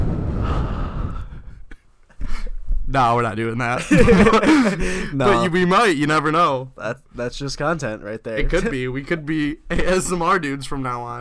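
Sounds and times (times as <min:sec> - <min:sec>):
close breathing blowing straight into the microphone: 0:00.0 - 0:02.7, 0:04.5 - 0:05.2
speech: 0:02.9 - 0:11.1
laughter: 0:03.8 - 0:05.6.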